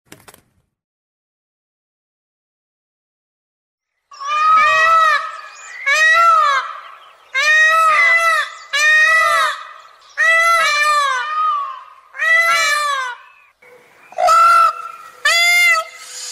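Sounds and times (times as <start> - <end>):
peacock: 4.1 - 16.3.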